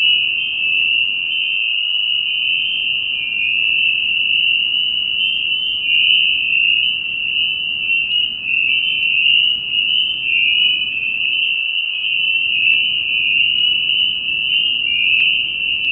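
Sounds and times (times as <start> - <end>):
spring peeper chorus of high clear peeps in New Paltz: 0.0 - 15.8.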